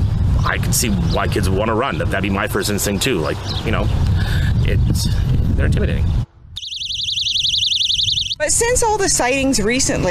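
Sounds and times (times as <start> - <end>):
speech: 0.5 - 6.2, 8.4 - 10.0
personal safety alarm sounding: 6.6 - 8.4.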